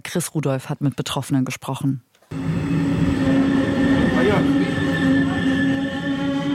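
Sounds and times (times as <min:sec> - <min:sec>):
speech: 0:00.1 - 0:02.4
regional express train pulling into Rathenow station in Germany: 0:02.3 - 0:06.5
sustained electric whine of regional express train: 0:02.3 - 0:06.5
faint metallic squeals of regional express train: 0:02.4 - 0:06.5.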